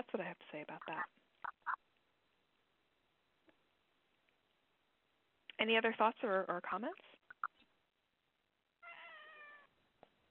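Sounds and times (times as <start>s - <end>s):
speech: 0.0s - 1.8s, 5.6s - 7.1s
single drawn-out cat meow: 8.8s - 9.8s.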